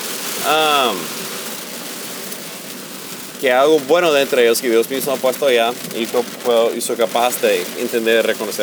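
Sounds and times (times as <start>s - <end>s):
heavy rain drumming on a car while driving: 0.0s - 8.6s
speech: 0.4s - 1.2s, 3.4s - 8.6s.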